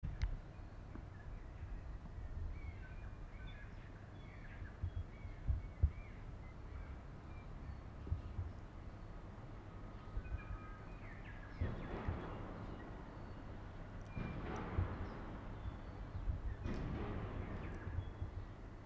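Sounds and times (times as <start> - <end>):
birds in Port Chalmers: 0.1 - 18.8
bangs in Port Chalmers: 11.5 - 18.8.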